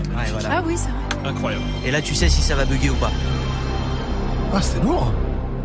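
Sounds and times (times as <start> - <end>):
speech: 0.2 - 3.6, 4.5 - 5.3
PlayStation 1 console startup sound synth drone: 1.2 - 5.6.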